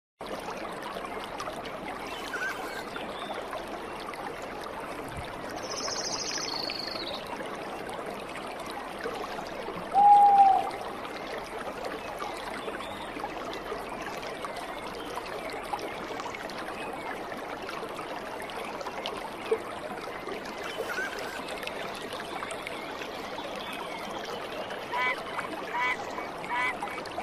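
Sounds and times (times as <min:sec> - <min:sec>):
forest stream rushing: 0:00.3 - 0:27.2
high bird call: 0:09.9 - 0:10.7.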